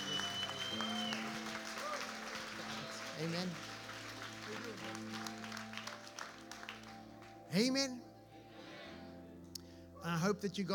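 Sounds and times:
church congregation applauding: 0.0s - 7.8s
speech: 3.2s - 3.7s, 4.5s - 5.6s, 7.5s - 8.1s, 10.0s - 10.7s.

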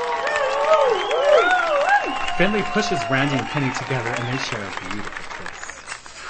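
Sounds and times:
whoops and shouts: 0.0s - 4.5s
large crowd cheering wildly: 0.0s - 6.0s
applause: 0.0s - 6.2s
speech: 2.4s - 5.6s.

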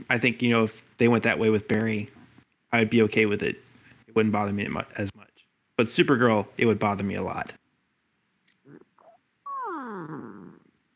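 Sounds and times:
speech: 0.1s - 3.6s, 4.2s - 5.2s, 5.8s - 7.6s
cat yowling: 8.7s - 10.6s.

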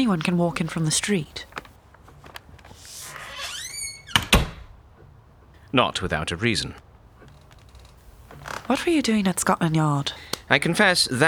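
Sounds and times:
speech: 0.0s - 1.5s, 5.7s - 6.9s, 8.7s - 11.2s
squealing door hinge creak: 3.0s - 4.6s, 7.2s - 8.7s
door closing with solid thumps: 3.4s - 4.8s.

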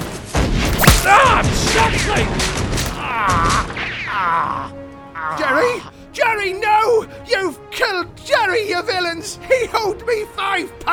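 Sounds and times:
musket volley: 0.0s - 3.8s
people shouting: 0.8s - 2.3s, 3.0s - 10.9s
speech: 1.8s - 2.6s, 7.3s - 10.9s.

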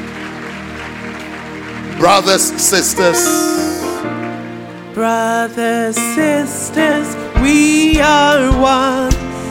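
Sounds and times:
audience applauding: 0.0s - 4.9s
speech: 2.0s - 3.8s, 5.0s - 9.1s.

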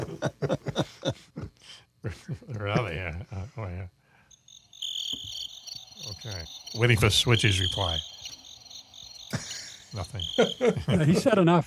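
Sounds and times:
laughter: 0.0s - 3.9s, 9.3s - 11.6s
speech: 2.6s - 4.0s, 6.2s - 8.1s, 10.0s - 11.6s
crickets chirping: 2.6s - 11.6s.

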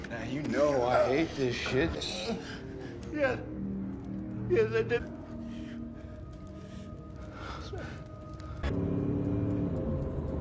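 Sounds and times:
speech: 0.2s - 3.5s, 4.5s - 5.2s
car engine drone: 8.7s - 10.4s.

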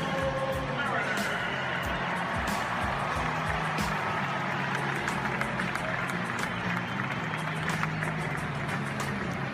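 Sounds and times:
large stadium crowd cheering as home team introduced: 0.0s - 9.5s
scattered clapping: 2.0s - 9.5s.

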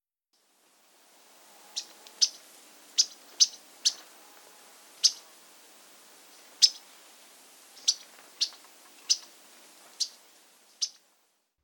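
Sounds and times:
Audubon's yellow-rumped warbler check calls: 1.7s - 4.2s, 4.9s - 5.4s, 6.2s - 6.9s, 7.7s - 11.0s.

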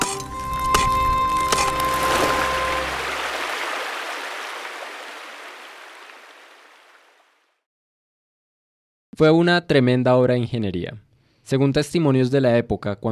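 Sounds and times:
water rushing violently through a channel: 1.4s - 7.2s
speech: 9.2s - 13.0s.

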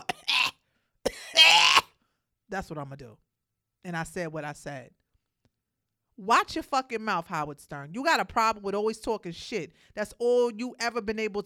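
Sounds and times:
person coughing forcefully: 0.0s - 1.9s
speech: 2.5s - 5.0s, 6.2s - 11.4s.

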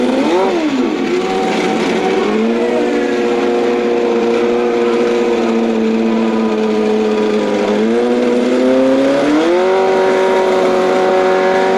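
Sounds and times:
race car engines droning around an oval: 0.0s - 11.7s.

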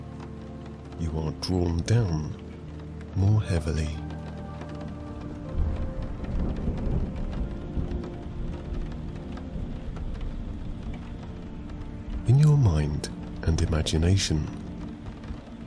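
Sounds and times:
steady rain hissing: 0.0s - 15.6s
speech: 1.0s - 2.4s, 3.2s - 4.2s, 12.3s - 14.6s
deep rolling thunder rumbling low: 4.0s - 15.6s.

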